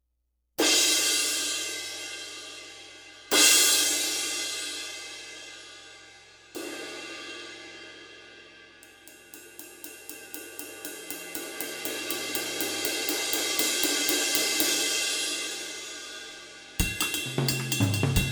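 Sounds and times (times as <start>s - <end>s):
24 Paiste cymbal: 0.6s - 18.3s.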